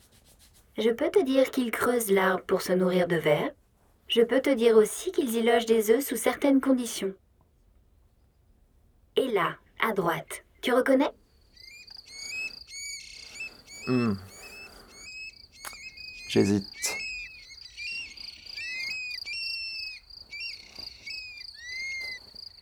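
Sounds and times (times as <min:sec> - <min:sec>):
speech: 0:00.8 - 0:07.2, 0:09.2 - 0:11.2, 0:13.9 - 0:14.3, 0:16.3 - 0:17.0
song thrush singing: 0:11.2 - 0:22.6.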